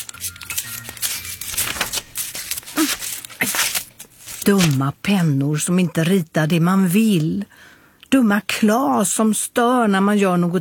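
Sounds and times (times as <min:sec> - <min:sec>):
paper drawing being crumpled and cut: 0:00.0 - 0:04.9
speech: 0:04.5 - 0:10.5.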